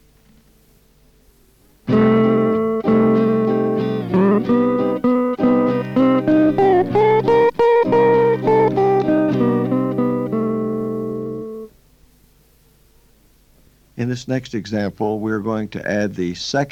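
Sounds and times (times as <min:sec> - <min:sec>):
C minor backing rhythm track: 0:01.9 - 0:11.7
improvised electric guitar solo with effects: 0:01.9 - 0:11.7
speech: 0:14.2 - 0:16.6.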